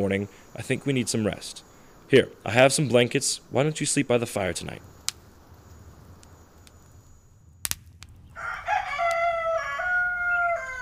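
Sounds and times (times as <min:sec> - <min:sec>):
speech: 0:00.0 - 0:04.9
rooster in a town crowing: 0:08.3 - 0:10.8.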